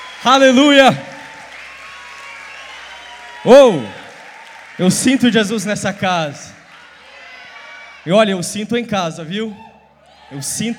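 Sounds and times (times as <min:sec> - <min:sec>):
crowd applauding: 0:00.0 - 0:08.5
speech: 0:00.2 - 0:01.1, 0:03.4 - 0:04.0, 0:04.8 - 0:06.6, 0:08.0 - 0:09.7, 0:10.3 - 0:10.7.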